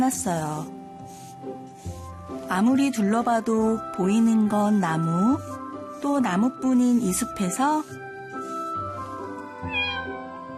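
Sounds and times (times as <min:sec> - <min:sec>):
speech: 0:00.0 - 0:08.0
faint sustained tonal background: 0:00.0 - 0:10.5
lost cat meowing in a forest: 0:09.6 - 0:10.3.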